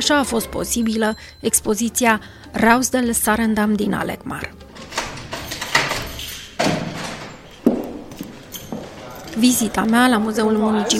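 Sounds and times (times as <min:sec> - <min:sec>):
speech: 0:00.1 - 0:04.6, 0:09.4 - 0:10.9
museum door heavy thuds and knocks while unlocked and opened: 0:04.8 - 0:08.2.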